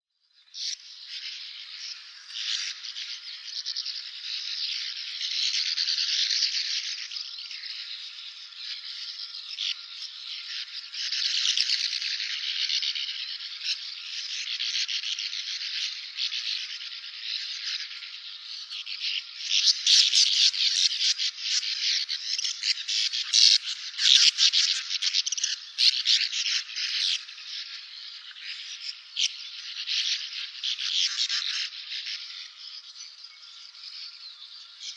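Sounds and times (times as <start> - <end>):
red-rumped swallow calling: 0.6 - 34.9.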